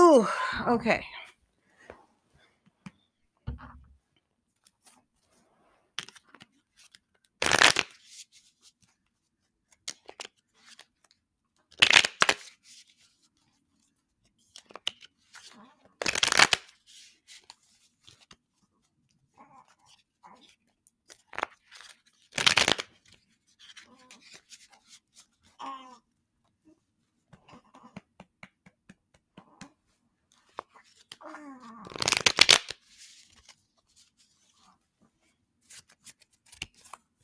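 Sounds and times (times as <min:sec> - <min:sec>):
speech: 0:00.2 - 0:01.1
tarot deck being shuffled: 0:06.0 - 0:08.9, 0:09.7 - 0:18.4, 0:19.9 - 0:25.6, 0:27.4 - 0:34.7, 0:35.6 - 0:37.2.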